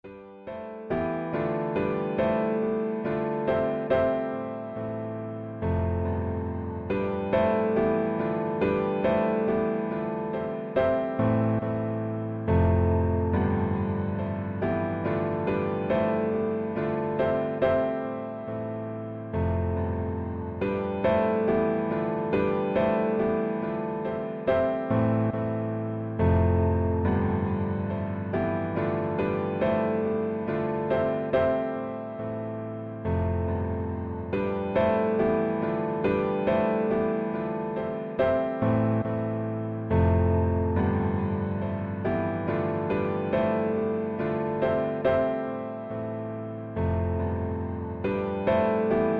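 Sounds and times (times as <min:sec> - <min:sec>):
piano chord loop: 0:00.0 - 0:49.1.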